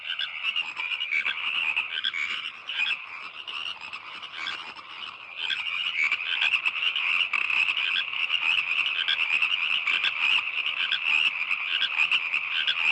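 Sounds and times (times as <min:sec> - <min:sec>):
frogs calling in a dense continuous trilling chorus: 0:00.0 - 0:12.9.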